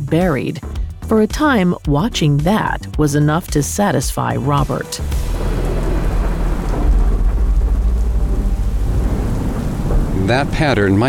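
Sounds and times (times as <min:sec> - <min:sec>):
speech: 0:00.1 - 0:05.4, 0:10.2 - 0:11.0
deep thunder rumbling in a summer storm in Kansas City: 0:05.0 - 0:11.0
steady heavy rain pouring in a summer storm at a home in Kansas City: 0:05.0 - 0:11.0.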